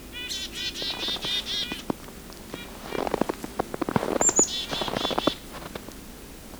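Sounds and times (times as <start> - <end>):
Red-breasted Nuthatch giving nasal tooting calls: 0.2 - 1.9, 2.5 - 5.9.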